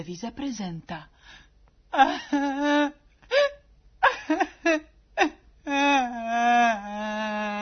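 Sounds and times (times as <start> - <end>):
speech: 0.0 - 3.5
woman crying in a television soap opera: 1.9 - 7.6.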